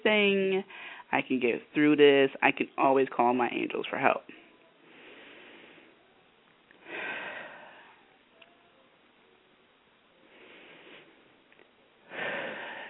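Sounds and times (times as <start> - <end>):
speech: 0.0 - 4.4
slow deep breaths during a calming breathing exercise: 0.7 - 1.1, 4.8 - 6.2, 6.8 - 8.2, 10.2 - 11.4, 12.0 - 12.8.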